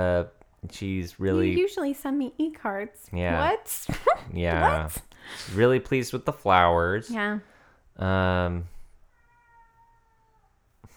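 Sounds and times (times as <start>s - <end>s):
speech: 0.0s - 8.8s
cat meowing: 9.0s - 10.6s.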